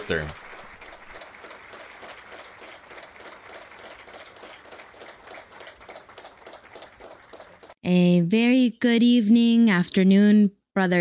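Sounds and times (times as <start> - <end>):
large church audience applauding: 0.0 - 7.8
speech: 0.1 - 0.4, 7.8 - 10.9.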